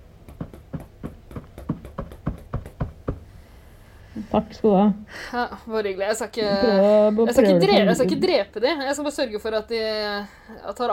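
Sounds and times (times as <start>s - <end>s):
soft knocks on a sofa cushion: 0.2s - 3.3s
speech: 4.3s - 10.9s.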